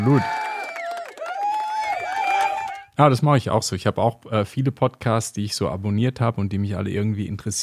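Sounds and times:
speech: 0.0 - 0.4, 3.0 - 7.6
crowd applause: 0.0 - 2.9.

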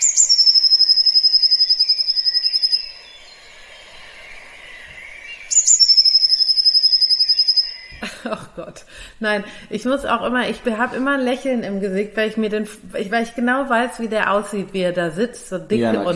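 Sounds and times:
songbird singing spring song with a high rapid reeling trill: 0.0 - 3.3, 5.4 - 7.9
laughter: 8.0 - 8.9
speech: 8.3 - 16.1.

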